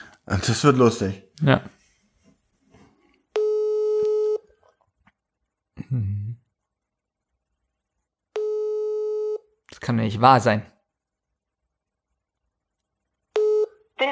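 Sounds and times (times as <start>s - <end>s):
speech: 0.3s - 1.8s, 9.9s - 10.7s
electronic phone busy tone after rejected call: 3.4s - 4.5s, 8.4s - 9.4s, 13.4s - 13.8s.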